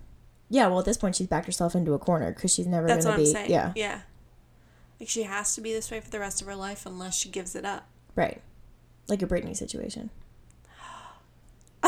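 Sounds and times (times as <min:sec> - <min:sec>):
speech: 0:00.5 - 0:04.1, 0:05.0 - 0:08.5, 0:09.1 - 0:10.2
quick breathy gasp: 0:10.7 - 0:11.3.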